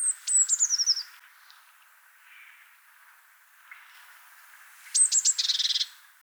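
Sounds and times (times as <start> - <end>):
Eurasian blue tit Cyanistes caeruleus calls: 0.0 - 6.2.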